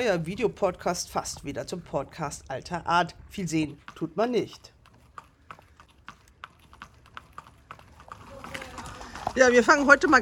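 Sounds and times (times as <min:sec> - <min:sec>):
speech: 0:00.0 - 0:04.8, 0:09.4 - 0:10.2
racehorse hooves clip-clopping across a hard racing-stable yard: 0:00.0 - 0:10.2.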